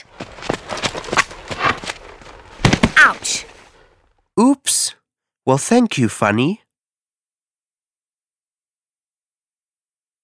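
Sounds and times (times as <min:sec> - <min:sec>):
hooves clip-clopping: 0:00.0 - 0:02.9
speech: 0:05.5 - 0:06.6.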